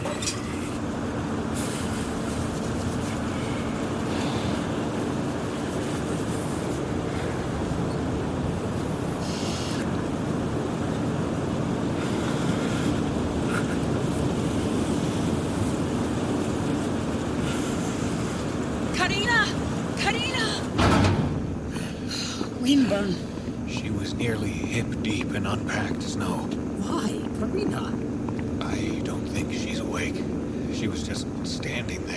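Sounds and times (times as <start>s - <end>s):
strong freezing wind roaring outside a bunker: 0.0s - 25.6s
low rumbling ambience inside a freezing bunker: 0.0s - 32.1s
heavy bunker door slamming shut: 20.8s - 21.6s.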